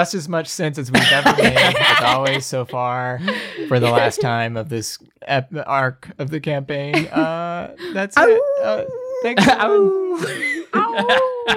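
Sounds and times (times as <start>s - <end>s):
speech: 0.0s - 11.5s
laughter: 1.0s - 4.5s, 7.0s - 7.5s, 9.3s - 11.5s
person vocally imitating a dog yelping and barking: 8.2s - 10.2s.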